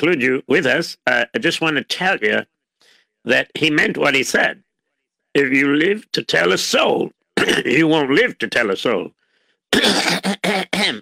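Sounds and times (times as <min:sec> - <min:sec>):
speech: 0:00.0 - 0:02.5, 0:03.2 - 0:04.6, 0:05.3 - 0:11.0
person clearing throat: 0:07.4 - 0:07.8, 0:09.7 - 0:11.0.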